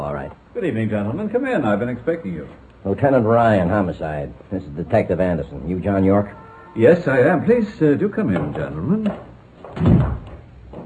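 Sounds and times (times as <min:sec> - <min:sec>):
speech: 0:00.6 - 0:10.2
button-operated electronic door opening with a low thunk: 0:09.1 - 0:10.8.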